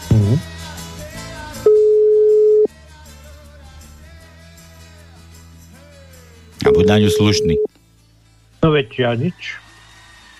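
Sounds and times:
telephone ringback tone on a call: 1.7 - 2.7, 6.6 - 7.7
speech: 6.8 - 7.7, 8.6 - 9.6.

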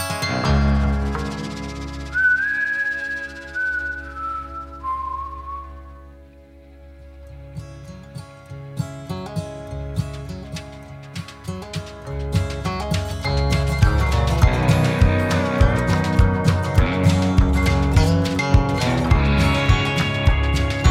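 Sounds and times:
country band with bass and guitar strumming: 0.0 - 20.8
melodic whistling in a country song: 0.4 - 6.2.

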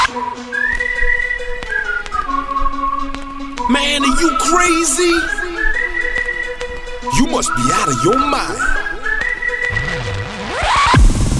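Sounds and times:
whistle blown in a dance track: 0.0 - 10.6
speech: 3.7 - 5.4, 7.1 - 8.7.

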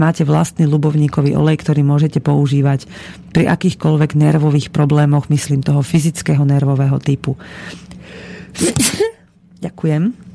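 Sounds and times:
speech: 0.0 - 10.3
sneeze: 8.6 - 9.2.

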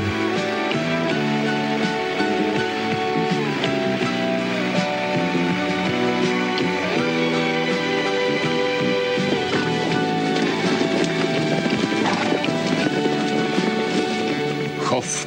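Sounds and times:
English thoroughbred horses trotting with clip-clop of hooves: 0.0 - 15.2
English thoroughbred horse neighing: 5.8 - 14.8
person talking: 14.8 - 15.2.

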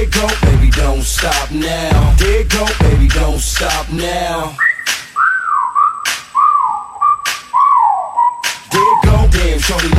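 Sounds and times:
speech: 0.1 - 4.7, 8.8 - 9.9
person wolf whistling in wavering sliding tones: 4.6 - 9.3
sharp cracking snaps: 4.8 - 5.3, 6.0 - 6.4, 7.2 - 9.0.

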